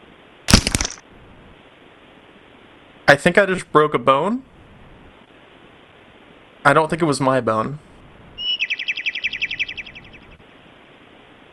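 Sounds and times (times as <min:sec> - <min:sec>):
speech: 0:03.1 - 0:04.5, 0:06.6 - 0:07.9
bird chirping indoors: 0:08.4 - 0:10.4.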